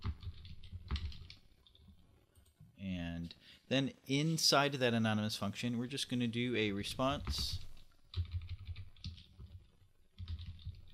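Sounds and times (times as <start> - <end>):
rapid typing on a computer keyboard while writing code: 0.0 - 2.6, 7.1 - 10.9
speech: 3.7 - 7.6.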